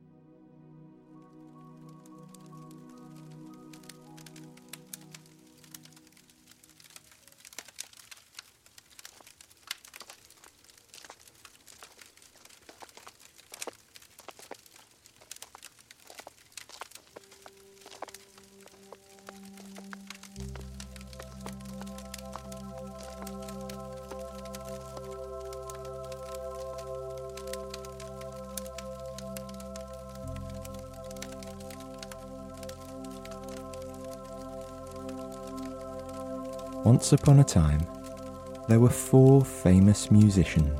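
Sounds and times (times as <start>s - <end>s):
fire crackling with pops and snaps inside a dance hall: 1.2s - 40.7s
soft footsteps on the cobblestone street: 10.4s - 22.0s
speech: 36.8s - 38.0s, 38.7s - 40.7s.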